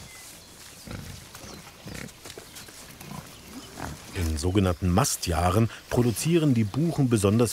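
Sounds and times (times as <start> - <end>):
rustling and snuffling: 0.0 - 4.6
wild boar grunting: 0.8 - 2.3, 2.9 - 4.4
speech: 4.4 - 7.5.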